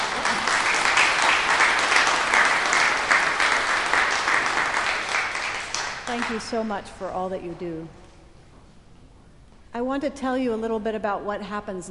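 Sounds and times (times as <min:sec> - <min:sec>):
audience clapping at a church service: 0:00.0 - 0:06.4
speech: 0:06.3 - 0:08.0, 0:09.8 - 0:11.8.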